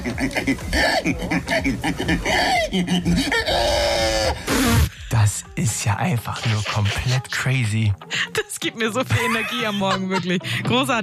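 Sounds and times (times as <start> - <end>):
laughter: 0.0 - 3.4, 9.0 - 10.9
man imitating pig squeals: 0.0 - 4.9
speech: 0.1 - 11.0.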